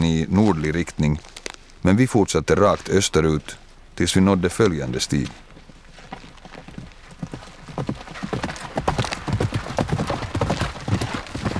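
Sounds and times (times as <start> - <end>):
speech: 0.0 - 5.4
horse hooves clip-clopping on hard ground: 4.6 - 11.5.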